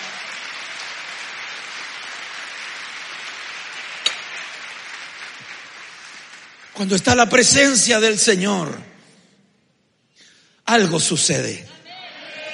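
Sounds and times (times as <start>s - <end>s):
sharp loud clap: 0.0s - 7.1s
audience at a church worship service clapping: 0.0s - 8.4s
speech: 6.8s - 8.9s, 10.7s - 11.8s.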